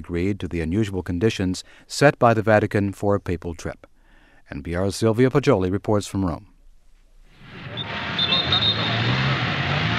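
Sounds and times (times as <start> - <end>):
speech: 0.0 - 3.9, 4.5 - 6.5
roar of engines of 16-car motorcade: 7.4 - 9.9
faint high tyre squeals: 7.5 - 9.9.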